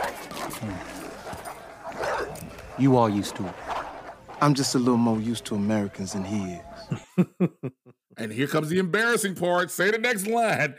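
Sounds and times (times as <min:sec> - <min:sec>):
dogs snarling and yelping in a vicious attack: 0:00.0 - 0:07.0
speech: 0:00.6 - 0:00.9, 0:02.8 - 0:03.6, 0:04.4 - 0:10.7
laughter: 0:05.1 - 0:08.0.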